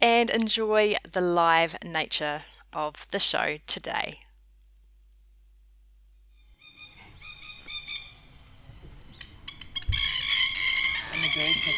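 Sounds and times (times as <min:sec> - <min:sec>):
speech: 0:00.2 - 0:04.2
birds singing outdoors: 0:06.4 - 0:11.7.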